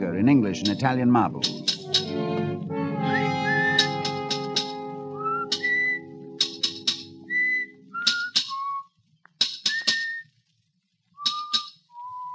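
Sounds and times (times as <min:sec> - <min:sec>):
speech: 0:00.0 - 0:02.3
hammer blows in a monumental mason's yard: 0:00.5 - 0:08.6
person whistling a cheerful tune: 0:03.0 - 0:08.9, 0:09.7 - 0:10.3, 0:11.2 - 0:12.3.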